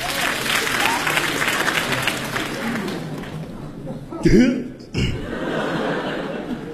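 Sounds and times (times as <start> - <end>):
audience applause at a crosstalk comedy show in a theater: 0.0 - 3.6
audience chuckling at a crosstalk comedy show in a theater: 0.7 - 4.3, 4.9 - 6.7
voice: 4.1 - 5.2.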